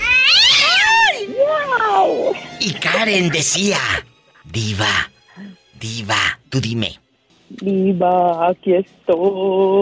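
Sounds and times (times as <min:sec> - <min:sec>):
cat meowing in the distance: 0:00.0 - 0:02.1
speech: 0:02.6 - 0:05.1, 0:05.8 - 0:09.7.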